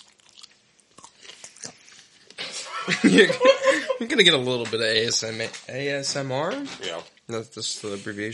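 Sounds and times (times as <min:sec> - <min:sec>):
chewing on sausage sticks: 0:00.0 - 0:02.4
laughter: 0:02.5 - 0:04.2
speech: 0:02.9 - 0:08.3.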